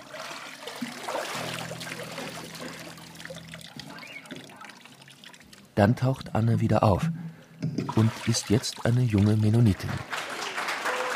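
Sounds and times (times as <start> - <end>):
water sloshing in a tub as a body goes under: 0.0 - 5.8, 7.8 - 9.4
speech: 5.8 - 10.2.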